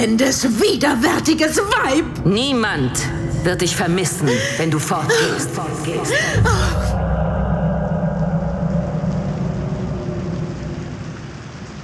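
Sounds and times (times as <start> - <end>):
speech: 0.0 - 7.0
low rumble: 1.6 - 11.8
steady rain pattering against a window: 9.1 - 11.8.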